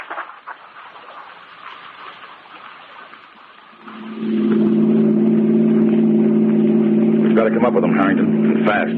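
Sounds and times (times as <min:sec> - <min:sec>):
road noise: 0:00.5 - 0:08.9
parked car engine idling late at night: 0:03.3 - 0:08.9.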